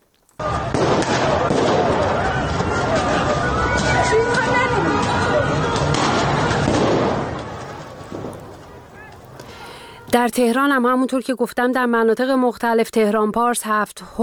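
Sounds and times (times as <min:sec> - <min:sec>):
loud chaotic street crowd shouting and babbling: 0:00.4 - 0:10.1
sharp gunshot-like bangs at street protest: 0:00.6 - 0:02.2, 0:05.8 - 0:08.8
speech: 0:10.2 - 0:14.2.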